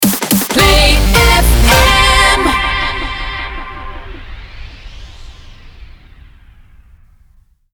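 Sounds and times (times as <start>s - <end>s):
160 bpm rapid fire music loop in C minor: 0.0s - 3.4s.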